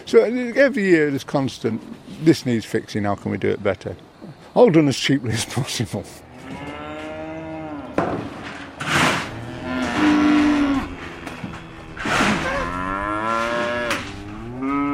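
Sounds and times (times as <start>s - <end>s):
speech: 0.1s - 6.7s
dairy heifers of mixed breeds mooing, Montbéliarde, Jersey and Friesian: 6.2s - 14.9s.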